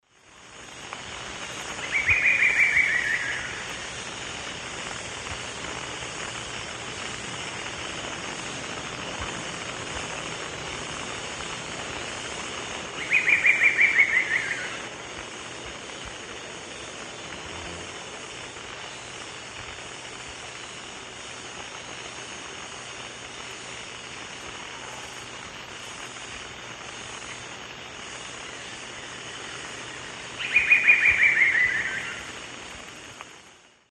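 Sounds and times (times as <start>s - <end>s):
Dendrocolaptes certhia song in eastern lowlands of South America: 0.6s - 4.2s, 12.8s - 17.8s, 28.6s - 32.4s.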